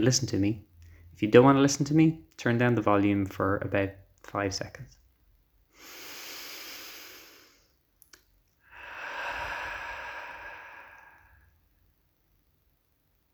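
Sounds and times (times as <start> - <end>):
speech: 0.0 - 5.0
person taking a deep breath: 5.7 - 7.8, 8.6 - 11.8.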